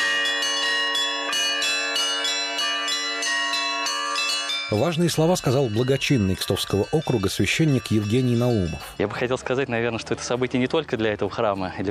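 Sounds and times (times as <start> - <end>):
church bells rung by bell ringers at a festival: 0.0 - 9.3
speech: 4.7 - 11.8.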